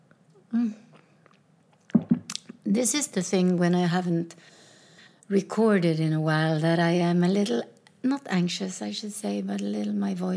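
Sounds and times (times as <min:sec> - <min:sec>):
person sipping and swallowing water: 0:00.4 - 0:02.6
speech: 0:00.5 - 0:00.9, 0:02.7 - 0:04.6, 0:05.3 - 0:10.3
faint mouth clicks: 0:00.9 - 0:02.6.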